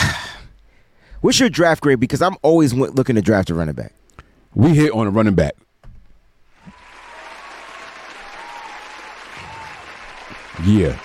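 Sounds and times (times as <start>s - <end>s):
speech: 1.2s - 5.7s, 10.6s - 11.0s
steady applause: 6.6s - 11.0s.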